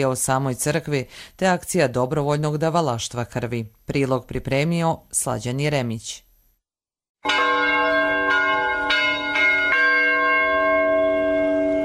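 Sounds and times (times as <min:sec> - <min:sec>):
speech: 0:00.0 - 0:06.3
church bells ringing at a parish jubilee in Koprivna: 0:07.2 - 0:11.8.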